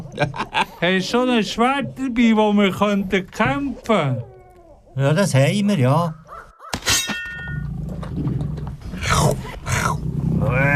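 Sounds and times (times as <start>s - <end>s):
laughter: 0.0s - 1.0s
speech: 0.2s - 4.3s, 5.0s - 6.2s
sharp metallic clang: 6.7s - 7.7s
lion roaring: 7.6s - 10.7s.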